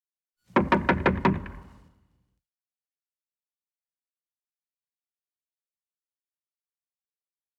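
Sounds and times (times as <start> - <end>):
fast knocking on a door in an office: 0.5 - 1.9.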